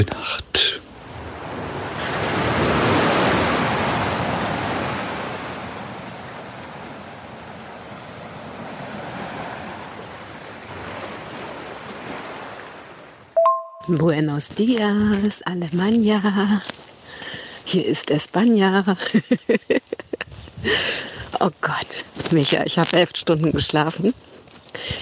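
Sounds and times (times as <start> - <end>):
speech: 0.0 - 0.7, 13.9 - 16.8, 17.7 - 20.0, 20.6 - 25.0
ocean surf washing onto a shore: 0.8 - 13.5
brief chime-like tone: 13.4 - 14.0
laughter: 18.9 - 20.3.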